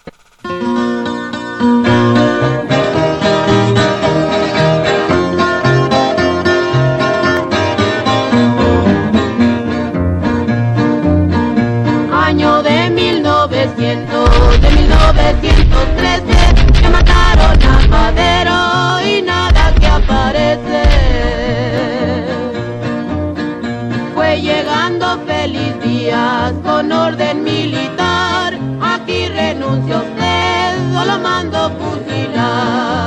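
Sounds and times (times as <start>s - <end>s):
steady guitar accompaniment: 0.0s - 33.0s
two sisters singing a Mexican corrido: 12.1s - 22.7s, 24.1s - 33.0s.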